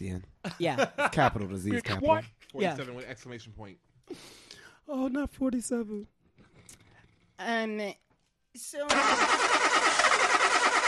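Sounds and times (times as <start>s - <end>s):
speech: 0.0s - 6.8s, 7.4s - 8.0s, 8.6s - 9.5s
car engine starter cranking without catching: 8.9s - 10.8s.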